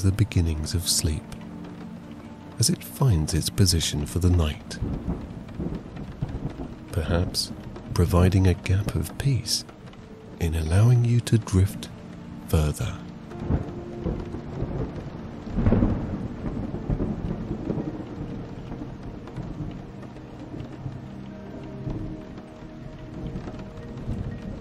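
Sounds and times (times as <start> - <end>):
speech: 0.0 - 1.4, 2.6 - 6.2, 6.9 - 9.7, 10.4 - 11.9, 12.5 - 14.3
rain falling: 0.0 - 24.5
deep rolling thunder: 4.4 - 8.1, 13.3 - 24.5.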